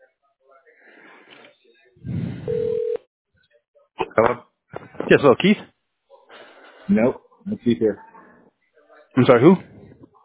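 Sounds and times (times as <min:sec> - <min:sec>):
telephone electronic tone while being dialed: 0:02.5 - 0:03.0
speech: 0:05.1 - 0:05.7, 0:06.9 - 0:08.1, 0:09.2 - 0:09.7.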